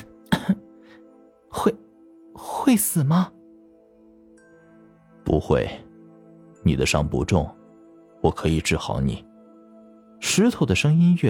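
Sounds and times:
man with a choked voice clearing his throat: 0.3 - 0.7
speech: 1.6 - 1.8, 2.4 - 3.4, 5.3 - 5.8, 6.6 - 7.6, 8.2 - 9.3, 10.2 - 11.2.

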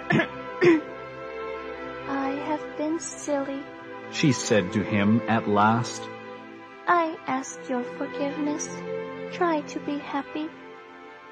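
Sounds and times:
narrator giving short dry coughs: 0.0 - 0.9
speech: 3.0 - 6.2, 6.9 - 10.6.

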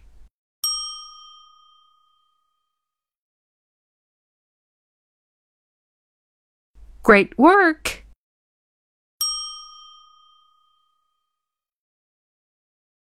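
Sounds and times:
bright ding chime: 0.6 - 2.9, 9.2 - 11.4
speech: 7.0 - 8.0.

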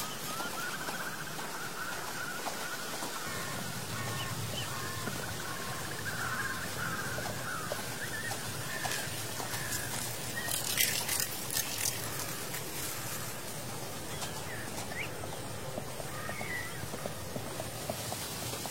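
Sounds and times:
dense rustling hiss in autumn outdoors: 0.0 - 18.6
faint birdsong: 0.0 - 18.6
crisp crackling: 8.7 - 13.5.

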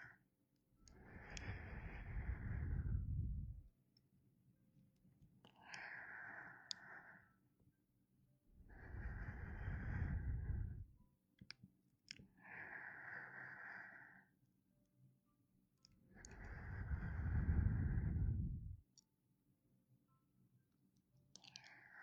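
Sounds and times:
slow warm breathing: 0.8 - 3.7, 5.5 - 7.4, 8.6 - 11.0, 12.4 - 14.3, 16.2 - 18.8.

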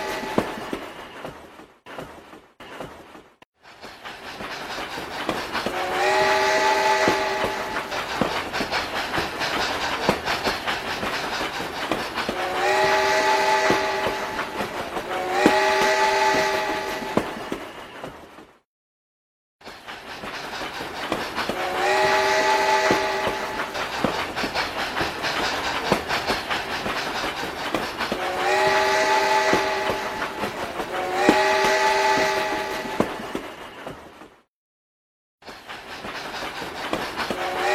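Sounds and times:
train whistle: 0.0 - 0.8, 5.6 - 8.8, 12.2 - 17.7, 21.4 - 24.6, 28.0 - 33.4, 37.2 - 37.7
rumbling rail noise: 0.0 - 18.6, 19.6 - 34.4, 35.4 - 37.7.

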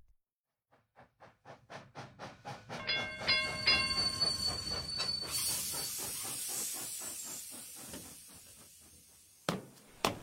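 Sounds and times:
Oimachi Line electric train rail clatter at Jiyugaoka Station: 1.0 - 10.2
long hiss of brakes or doors releasing air: 5.3 - 9.8.

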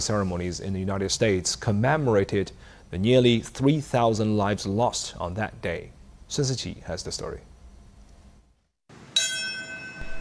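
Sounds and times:
speech: 0.0 - 7.5
large memorial bell ringing at a September 11th anniversary ceremony in New York: 9.1 - 10.1.

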